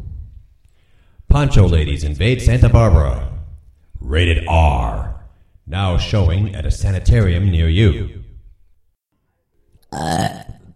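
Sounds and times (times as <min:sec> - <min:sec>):
speech: 0:01.4 - 0:03.3, 0:04.0 - 0:05.1, 0:05.7 - 0:08.2, 0:09.9 - 0:10.4
loud drawn-out guttural burp: 0:09.9 - 0:10.7.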